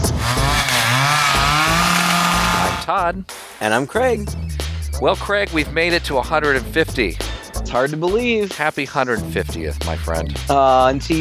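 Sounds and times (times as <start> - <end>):
chainsaw engine revving: 0.0 - 2.9
speech: 2.9 - 11.1.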